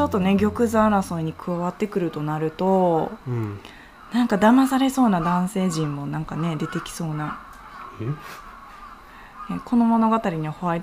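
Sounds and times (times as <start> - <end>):
speech: 0.0 - 7.4, 8.0 - 8.4, 9.5 - 10.8
faint murmuring voices: 0.0 - 10.8
low hum: 0.0 - 10.8
crow cawing as it flies off: 3.7 - 10.8.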